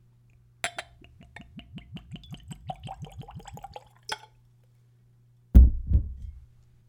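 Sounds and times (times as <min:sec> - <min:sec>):
glass clink: 0:00.6 - 0:01.0
spirit glugging from a screw-cap bottle into a Glencairn whiskey nosing glass: 0:00.7 - 0:04.3.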